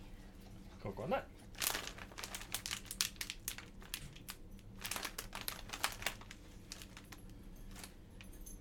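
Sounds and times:
speech: 0.8 - 1.3
sealed snack pouch crinkling as it is handled: 1.5 - 8.0.

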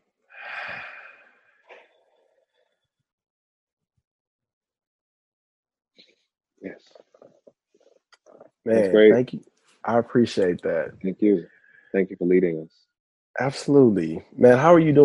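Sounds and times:
deep breath in and out: 0.3 - 1.8
speech: 8.6 - 15.0
laughter: 8.7 - 11.4, 12.0 - 12.6, 13.4 - 15.0.

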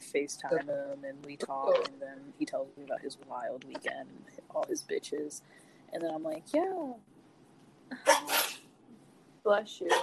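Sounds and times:
speech: 0.1 - 7.1, 7.9 - 8.4, 9.4 - 10.0
person sneezing: 8.0 - 8.6.

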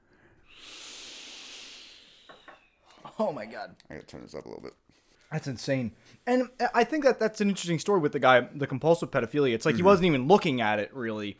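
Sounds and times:
vape being puffed with an airy hiss: 0.4 - 2.9
speech: 3.2 - 11.3.

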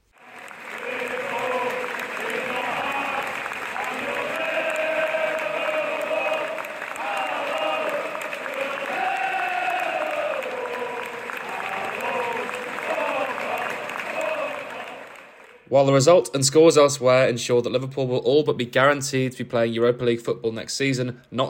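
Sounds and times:
large football stadium crowd applauding at Anfield Liverpool as a tribute: 0.0 - 16.2
speech: 15.8 - 21.4.

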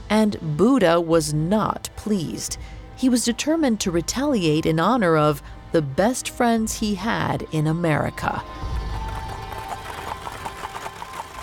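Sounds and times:
speech: 0.1 - 8.7
horse hooves clip-clopping at an even trot on Wall Street in New York City: 8.5 - 11.4
horse-drawn wagon rumbling along Wall Street in New York City: 8.5 - 11.4.

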